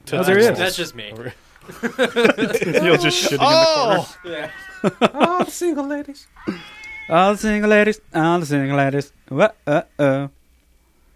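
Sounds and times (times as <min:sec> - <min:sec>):
speech: 0:00.1 - 0:10.4
laughter: 0:01.2 - 0:05.8
cat meowing: 0:02.8 - 0:05.2, 0:06.4 - 0:07.6.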